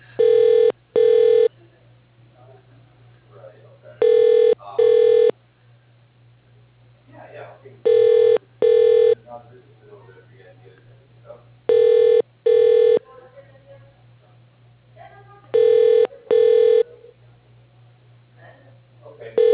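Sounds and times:
telephone ringing on an office extension line: 0.2s - 1.5s, 4.0s - 5.3s, 7.9s - 9.2s, 11.7s - 13.0s, 15.6s - 16.8s, 19.4s - 19.5s.

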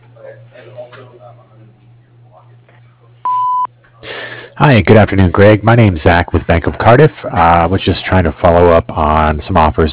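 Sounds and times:
speech: 0.2s - 3.4s, 4.0s - 9.9s
voicemail beep before recording a message: 3.3s - 3.7s
recorded voicemail greeting voice: 4.6s - 9.9s.

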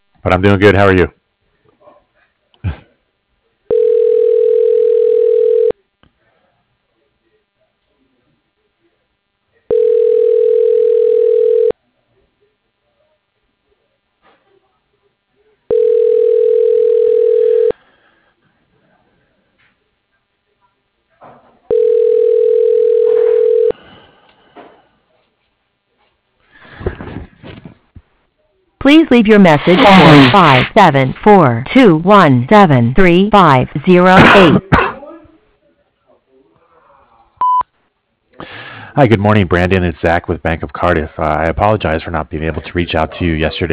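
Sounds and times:
speech: 0.2s - 1.2s, 29.1s - 34.7s, 39.0s - 43.7s
telephone ringback tone: 3.7s - 5.8s, 9.7s - 11.7s, 15.7s - 17.8s, 21.7s - 23.8s.

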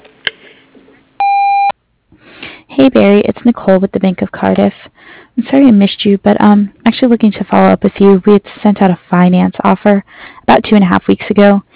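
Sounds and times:
voicemail beep tone on a business answering line: 1.2s - 1.7s
speech: 2.8s - 11.7s.

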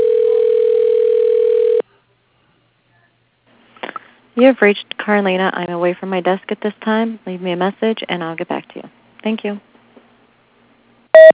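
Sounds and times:
steady telephone tone on an automated phone line: 0.0s - 1.8s, 11.1s - 11.3s
speech: 4.4s - 9.7s.

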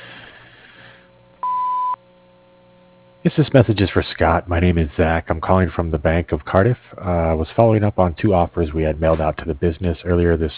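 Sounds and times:
answering machine beep: 1.4s - 2.0s
speech: 3.2s - 10.5s.

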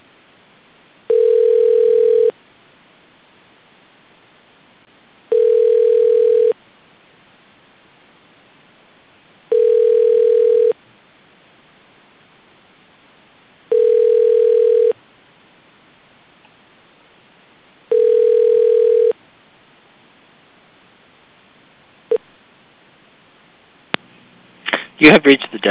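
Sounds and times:
telephone ringback tone during call transfer: 1.1s - 2.3s, 5.3s - 6.6s, 9.5s - 10.8s, 13.7s - 15.0s, 17.9s - 19.2s
speech: 25.0s - 25.7s.

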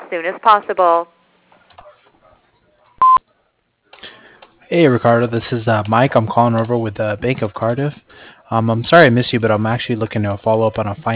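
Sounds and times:
speech: 0.1s - 1.2s, 4.7s - 11.1s
voicemail beep before a message is left: 3.0s - 3.2s.

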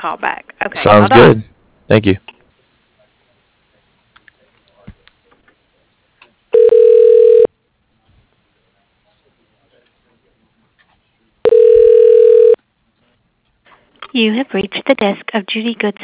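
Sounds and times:
speech: 0.0s - 2.4s, 14.2s - 16.0s
telephone ringing as a call is transferred to voicemail: 6.6s - 7.5s, 11.4s - 12.6s.

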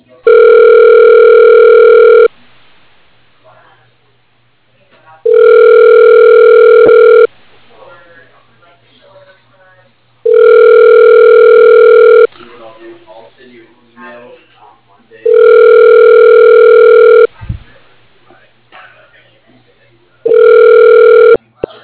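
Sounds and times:
telephone ringback tone of a call being placed: 0.3s - 2.3s, 5.3s - 7.3s, 10.3s - 12.3s, 15.3s - 17.3s, 20.3s - 21.4s
quiet talk: 3.3s - 21.8s.

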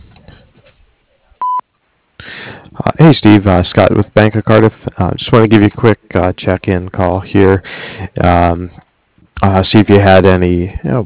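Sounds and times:
short electronic voicemail beep: 1.4s - 1.6s
speech: 3.0s - 11.0s.

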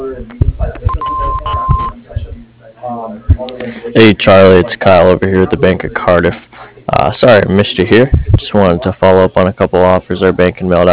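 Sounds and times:
answering machine beep on a plumbing business's phone line: 0.9s - 2.0s
speech: 3.2s - 10.9s.

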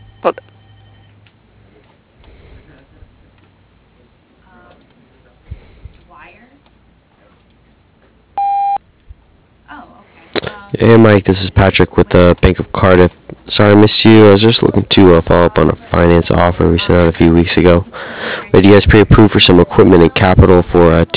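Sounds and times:
telephone call ringing through to voicemail: 0.0s - 1.2s, 8.4s - 8.8s
speech: 0.2s - 0.5s, 10.8s - 21.1s
loud electronic voicemail beep: 8.4s - 8.8s.

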